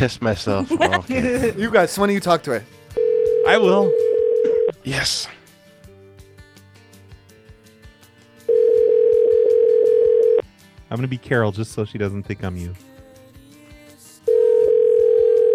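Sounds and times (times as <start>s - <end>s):
speech: 0.0s - 2.8s, 3.4s - 4.1s, 4.8s - 5.4s, 10.9s - 12.9s
laughter: 0.5s - 1.9s
steady telephone ringing tone on an outgoing call: 2.9s - 4.8s, 8.5s - 10.4s, 14.3s - 15.5s.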